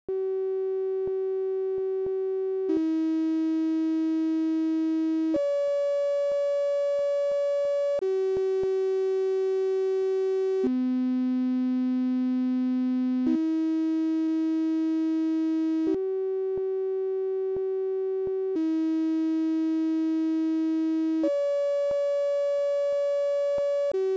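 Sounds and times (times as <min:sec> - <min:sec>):
sine wave melody: 0:00.1 - 0:24.1.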